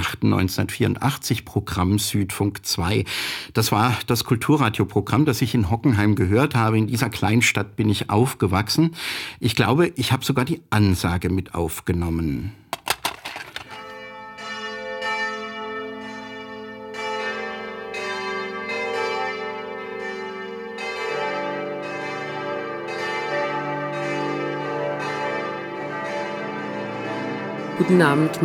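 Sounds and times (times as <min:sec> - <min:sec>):
speech: 0:00.2 - 0:12.6, 0:27.8 - 0:28.4
church bells of Stuttgart's Stiftskirche ringing for a service: 0:13.9 - 0:28.4.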